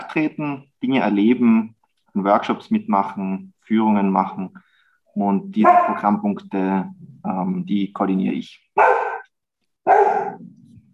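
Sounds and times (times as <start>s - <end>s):
speech: 0.1s - 8.9s
dog barking: 5.6s - 6.2s, 8.8s - 10.5s.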